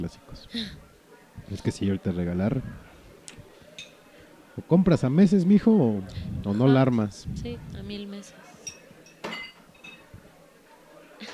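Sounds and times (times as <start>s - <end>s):
speech: 0.0s - 2.9s, 4.6s - 8.5s
laughter: 6.1s - 7.0s
ceramic and glass crashing: 8.6s - 10.1s
dishes clattering and clinking: 8.6s - 10.1s.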